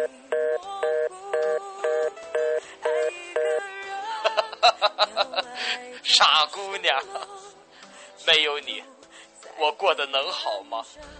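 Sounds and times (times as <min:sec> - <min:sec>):
telephone busy tone after a hang-up: 0:00.0 - 0:03.6
laughter: 0:04.2 - 0:05.9
speech: 0:05.7 - 0:07.4, 0:08.2 - 0:08.9, 0:09.6 - 0:11.1.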